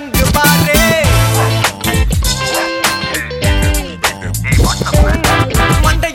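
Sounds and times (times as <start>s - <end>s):
Tamil song ringtone: 0.2s - 3.5s, 4.3s - 6.0s.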